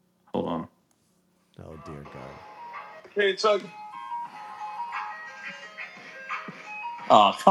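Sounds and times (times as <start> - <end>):
tinny ice cream truck jingle: 1.7 - 7.4
speech: 1.8 - 2.5, 3.1 - 3.8, 7.1 - 7.4.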